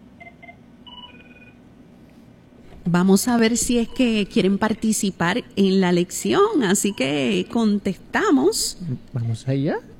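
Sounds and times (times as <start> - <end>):
steady low hum: 0.0 - 9.9
short electronic telephone beeps signalling an incoming call: 0.2 - 1.6
speech: 2.8 - 9.9.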